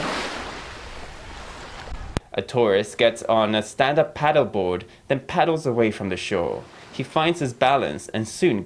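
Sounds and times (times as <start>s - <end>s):
crystalline waves breaking against the shore: 0.0s - 2.3s, 6.5s - 7.8s
speech: 2.4s - 8.6s.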